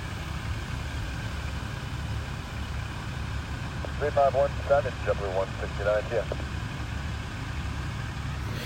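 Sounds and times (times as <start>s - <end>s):
trucks driving along a road: 0.0s - 8.6s
faint voices: 3.8s - 6.4s.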